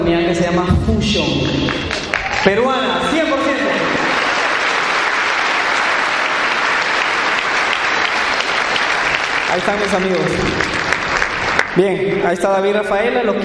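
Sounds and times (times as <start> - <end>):
speech: 0.1 - 4.0, 9.5 - 10.8, 11.8 - 13.4
loud sustained applause from a sizable audience: 1.6 - 11.8.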